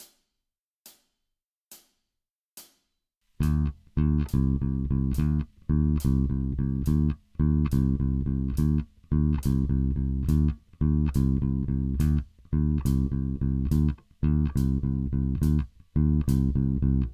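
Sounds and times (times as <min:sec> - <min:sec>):
heavy rock blues bass: 0:03.4 - 0:17.1.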